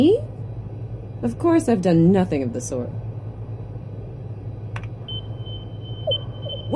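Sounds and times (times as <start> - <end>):
constant low engine-like rumble: 0.0 - 6.7
speech: 1.2 - 3.0
sharp sonar click: 5.1 - 6.7.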